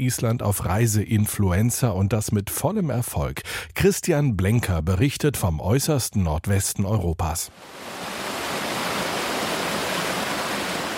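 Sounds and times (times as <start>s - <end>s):
speech: 0.0s - 8.3s
roar of rushing water from a waterfall: 7.6s - 10.9s.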